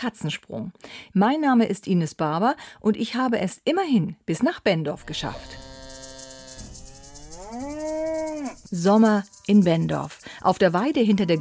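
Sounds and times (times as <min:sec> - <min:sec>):
speech: 0:00.0 - 0:05.7, 0:08.7 - 0:11.3
cow mooing on a summer pasture behind a converted old farmstead: 0:05.0 - 0:08.7
hiss: 0:05.1 - 0:11.1.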